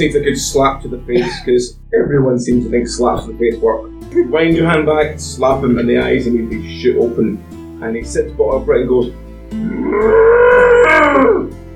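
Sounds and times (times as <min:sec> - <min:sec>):
speech: 0:00.0 - 0:11.6
human voice imitating a cow's moo: 0:09.6 - 0:11.5.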